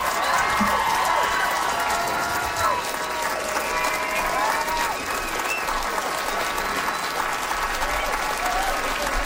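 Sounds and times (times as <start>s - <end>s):
audience whoops and cheers: 0.0s - 5.9s, 7.8s - 9.2s
audience applause for a comedian finishing a comedy set: 0.0s - 9.2s.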